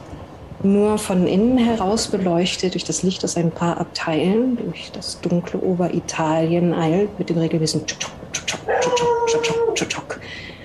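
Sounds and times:
speech: 0.6s - 8.2s, 8.8s - 10.5s
dog howling: 8.3s - 10.0s
dog yips and barks: 8.4s - 9.8s.

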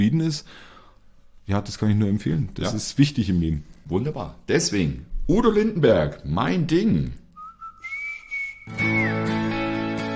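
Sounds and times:
speech: 0.0s - 0.7s, 1.5s - 7.2s
person whistling a clear sustained melody: 7.4s - 9.6s
full instrumental music: 8.6s - 10.1s.

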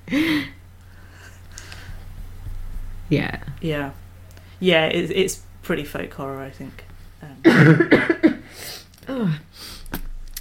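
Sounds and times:
speech: 3.1s - 4.0s, 4.6s - 8.0s
person coughing harshly with a vocal rasp: 7.5s - 8.4s.

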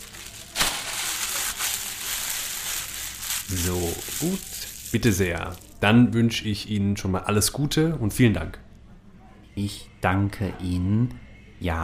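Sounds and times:
plastic shopping bag crinkling as purchases are packed in a shop: 0.0s - 5.8s
speech: 3.5s - 8.6s, 9.6s - 11.8s.

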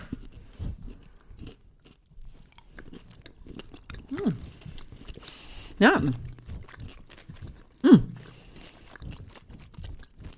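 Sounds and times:
crunchy chewing of licorice chocolate with small crispy pearls: 0.0s - 10.3s
mouth sounds: 4.1s - 4.5s, 5.8s - 6.4s, 7.8s - 8.4s
speech: 5.8s - 6.2s.

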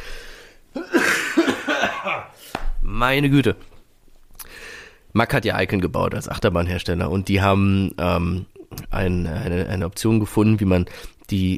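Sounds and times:
person coughing harshly: 0.8s - 2.4s
speech: 2.1s - 3.7s, 5.2s - 11.5s.

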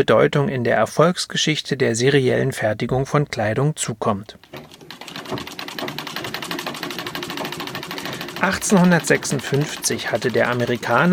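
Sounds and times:
speech: 0.0s - 4.7s, 5.3s - 5.6s, 8.4s - 11.1s
sewing machine running: 4.6s - 11.1s.

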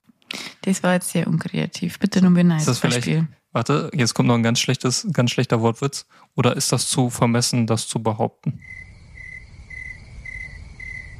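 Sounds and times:
speech: 0.6s - 8.8s
crickets chirping: 8.6s - 11.1s.

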